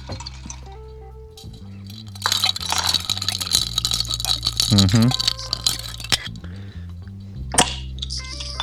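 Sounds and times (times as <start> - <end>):
steady low hum: 0.0 - 8.6
drink being stirred in a glass: 1.9 - 6.3.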